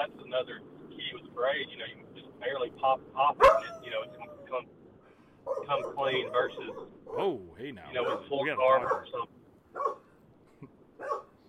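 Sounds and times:
speech: 0.0s - 4.8s, 5.5s - 10.0s
dog barking after waking from nap: 3.4s - 4.5s, 5.4s - 10.1s, 11.0s - 11.4s
dog yipping: 3.4s - 4.6s, 5.4s - 9.2s, 9.8s - 10.1s, 11.0s - 11.4s.

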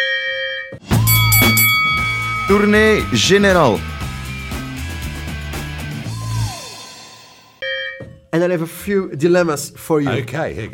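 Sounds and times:
hand bell ringing: 1.0s - 4.5s
speech: 2.5s - 3.9s, 8.4s - 10.7s.

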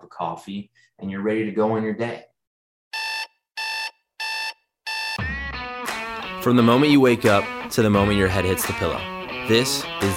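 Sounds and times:
speech: 0.1s - 2.3s, 6.4s - 10.1s
alarm clock beeping: 2.9s - 5.2s.

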